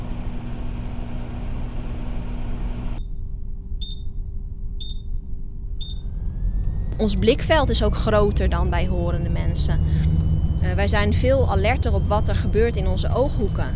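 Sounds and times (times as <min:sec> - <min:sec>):
microwave oven humming: 0:00.0 - 0:03.0, 0:05.8 - 0:13.7
low rumble: 0:00.0 - 0:13.7
microwave oven high-pitched finished beeps: 0:03.8 - 0:04.2, 0:04.8 - 0:05.2, 0:05.8 - 0:13.7
speech: 0:07.0 - 0:13.7.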